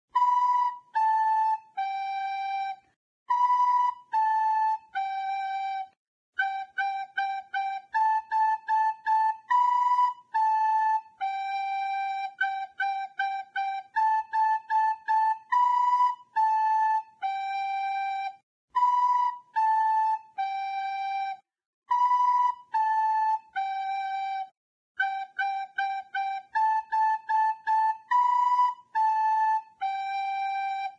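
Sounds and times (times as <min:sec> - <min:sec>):
flute melody: 0:00.1 - 0:30.9.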